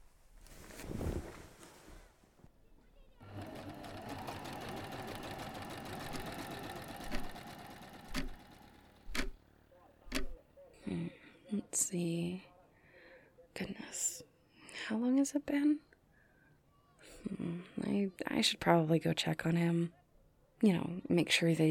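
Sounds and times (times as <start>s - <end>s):
sewing machine stitching fabric: 3.2s - 9.4s
thumps and clicks: 9.0s - 9.4s, 10.1s - 10.4s
speech: 11.9s - 12.5s, 14.9s - 15.9s, 17.6s - 20.0s, 20.6s - 21.6s.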